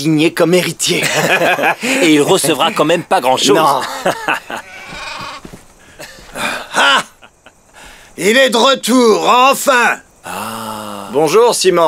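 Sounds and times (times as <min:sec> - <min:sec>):
speech: 0:00.0 - 0:04.7, 0:08.2 - 0:11.8
laughter: 0:00.9 - 0:07.8
sheep bleating: 0:04.6 - 0:05.6.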